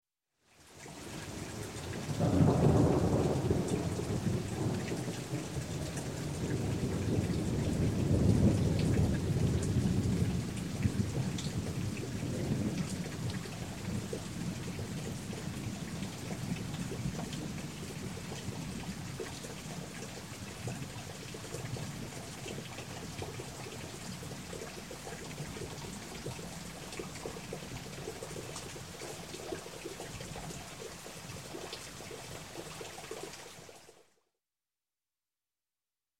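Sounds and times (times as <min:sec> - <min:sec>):
rain: 0:00.4 - 0:34.2
long thunder rumble: 0:02.2 - 0:18.8.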